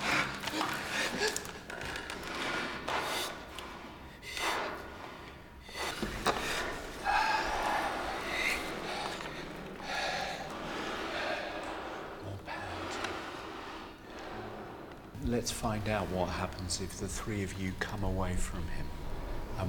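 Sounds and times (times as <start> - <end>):
several voices imitating ragged sleepy breathing with snorts, huffs and gasps: 0.0 - 15.2
speech: 15.4 - 19.0.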